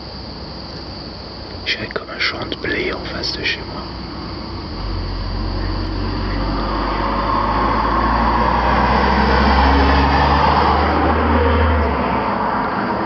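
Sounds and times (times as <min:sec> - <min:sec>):
speech: 0:01.7 - 0:04.1
cars passing on a road: 0:02.7 - 0:13.0.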